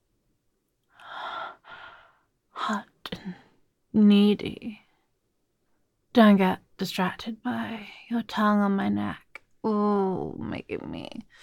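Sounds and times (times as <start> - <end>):
soft breathing close to the ear: 0.9 - 2.3
speech: 2.7 - 4.8, 6.2 - 11.4.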